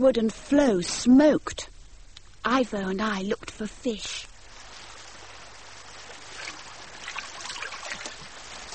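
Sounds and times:
speech: 0:00.0 - 0:01.7, 0:02.4 - 0:04.3
river water trickling over stones: 0:05.9 - 0:08.7.

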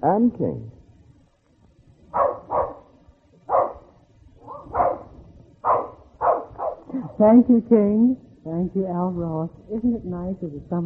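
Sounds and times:
faint noise: 0:00.0 - 0:10.8
speech: 0:00.1 - 0:00.8, 0:07.2 - 0:10.8
dog barking: 0:02.1 - 0:02.9, 0:03.5 - 0:06.9.

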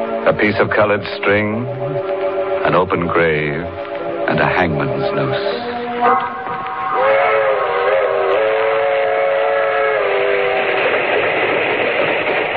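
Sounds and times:
passenger train rushing along rails: 0:00.0 - 0:12.5
speech: 0:00.2 - 0:06.4
passenger train whistle blast: 0:05.6 - 0:10.9.

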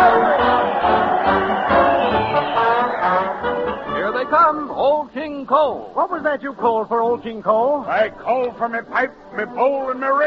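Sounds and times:
brass band playing: 0:00.0 - 0:04.8
crowd cheering: 0:00.0 - 0:05.0
speech: 0:04.5 - 0:10.2.

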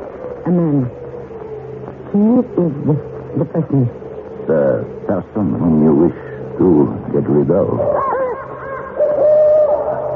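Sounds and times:
speech: 0:00.5 - 0:01.0, 0:02.1 - 0:08.1
owl hooting: 0:07.6 - 0:10.1.

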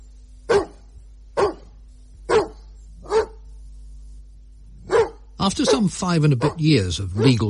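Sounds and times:
faint low hum: 0:00.0 - 0:07.4
greyhound barking: 0:00.5 - 0:03.5, 0:04.8 - 0:07.4
speech: 0:05.4 - 0:07.4.

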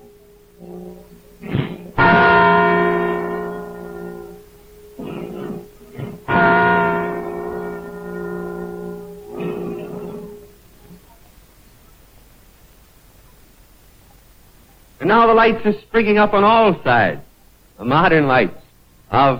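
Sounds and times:
replica Liberty Bell ringing from belfry: 0:00.0 - 0:10.7
speech: 0:00.6 - 0:01.6, 0:15.0 - 0:17.2, 0:17.8 - 0:19.3
faint clangs: 0:01.9 - 0:11.0.

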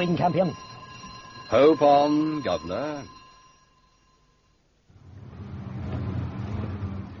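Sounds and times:
speech: 0:00.0 - 0:00.7, 0:01.5 - 0:03.2
car engine starting and revving as the car pulls away: 0:04.9 - 0:07.1.

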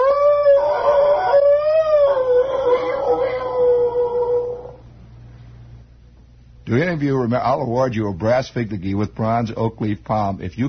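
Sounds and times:
timber wolf howling: 0:00.0 - 0:04.8
speech: 0:06.7 - 0:10.6.

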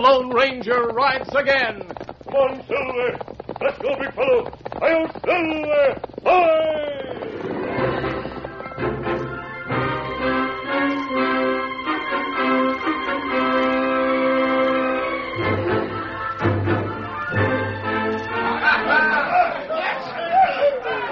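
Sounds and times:
speech: 0:00.0 - 0:07.2
tuneful music: 0:07.3 - 0:19.4
noisy boisterous crowd chattering and laughing in a busy cafe: 0:18.4 - 0:21.1.

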